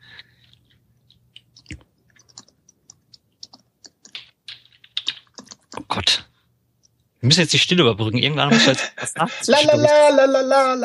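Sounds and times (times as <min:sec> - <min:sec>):
typing on a computer keyboard: 0:00.5 - 0:05.9
speech: 0:06.0 - 0:06.2, 0:07.2 - 0:10.8.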